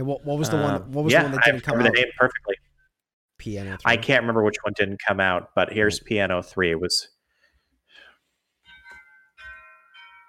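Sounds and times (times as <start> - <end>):
speech: 0.0 - 2.6, 3.4 - 7.2
wind chimes ringing with bright metallic tones: 8.6 - 10.2.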